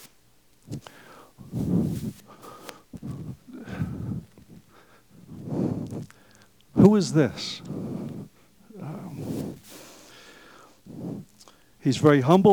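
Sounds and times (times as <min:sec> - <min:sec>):
heavy breathing: 0:00.0 - 0:12.5
speech: 0:06.8 - 0:07.7, 0:11.8 - 0:12.5.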